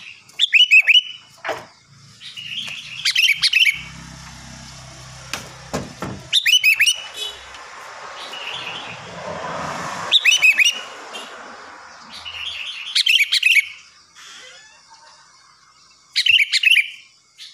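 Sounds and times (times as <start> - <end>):
Sooty-headed bulbul song of slurred whistled notes: 0.0 - 1.4, 2.1 - 4.1, 6.2 - 9.1, 10.1 - 14.0, 15.0 - 17.5.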